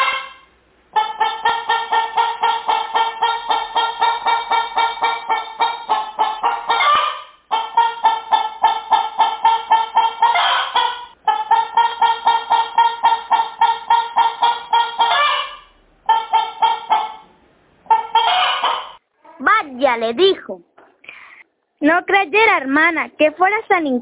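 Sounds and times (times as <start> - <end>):
hen cackling: 0.0 - 19.4
speech: 20.0 - 20.7, 21.8 - 24.0.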